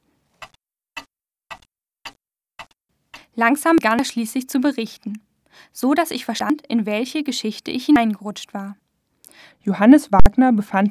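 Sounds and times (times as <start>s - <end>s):
large pendulum clock ticking: 0.4s - 3.3s
speech: 3.4s - 8.8s, 9.4s - 10.8s.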